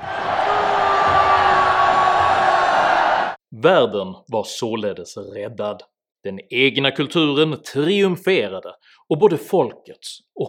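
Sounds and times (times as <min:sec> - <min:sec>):
large audience screaming and yelling at a human sacrifice: 0:00.0 - 0:03.4
speech: 0:03.6 - 0:10.4.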